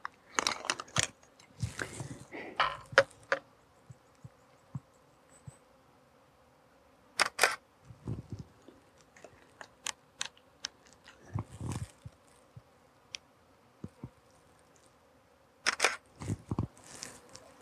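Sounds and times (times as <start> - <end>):
flying insects buzzing: 0.0 - 17.6
camera shutter clicks: 7.2 - 7.6, 15.6 - 16.0.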